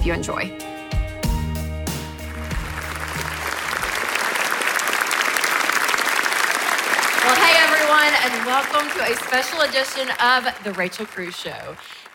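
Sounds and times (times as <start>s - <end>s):
speech: 0.0s - 0.7s, 7.9s - 12.0s
live studio audience applauding: 2.1s - 12.1s.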